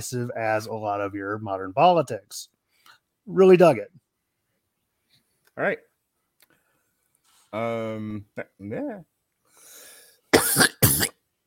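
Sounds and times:
speech: 0.0s - 2.6s, 3.2s - 4.0s, 5.6s - 5.9s, 7.5s - 9.1s
wet phlegmy coughs: 10.4s - 11.2s.

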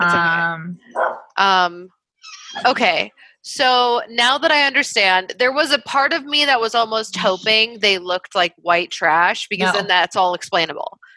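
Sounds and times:
speech: 0.8s - 11.1s
dog barking: 1.0s - 1.4s.

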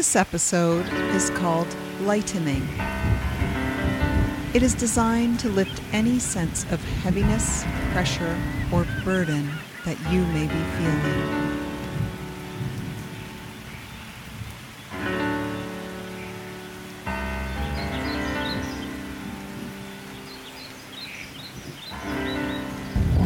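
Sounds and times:
speech: 0.0s - 3.3s, 4.5s - 11.6s
steady rain: 0.0s - 23.2s
gentle piano and flute music: 0.7s - 23.2s
low rumbles of thunder: 2.5s - 9.3s, 10.6s - 15.8s, 17.1s - 20.0s, 21.4s - 23.2s
faint shorebird calls: 4.5s - 23.1s.

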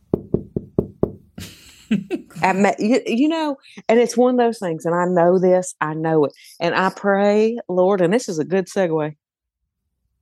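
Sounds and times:
knocking on a bedroom door: 0.1s - 1.3s
speech: 1.9s - 9.2s.

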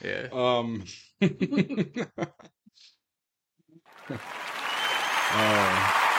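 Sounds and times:
speech: 0.0s - 3.0s, 4.1s - 4.4s, 5.3s - 6.0s
laughter: 1.2s - 2.5s, 4.0s - 4.7s
crowd applauding: 3.9s - 6.1s.

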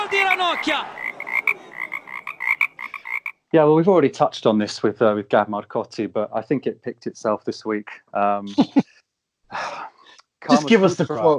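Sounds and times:
laughter: 0.0s - 3.0s, 8.2s - 8.9s, 10.5s - 11.3s
frog croaking: 0.0s - 3.4s
speech: 0.5s - 1.0s, 3.5s - 8.9s, 9.5s - 11.3s.

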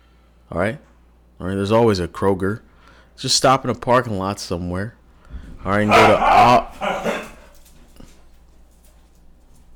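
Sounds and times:
low hum: 0.0s - 9.7s
speech: 0.5s - 6.9s
dog barking: 5.7s - 7.6s
dog whimpering: 5.9s - 7.5s.

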